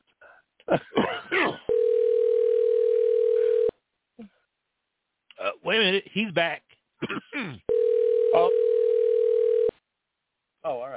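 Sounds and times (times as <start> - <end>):
throat clearing: 0.6 - 1.7, 7.0 - 7.7
speech: 0.7 - 1.6, 5.6 - 7.7, 10.6 - 10.9
telephone dial tone: 1.7 - 3.7, 7.7 - 9.7.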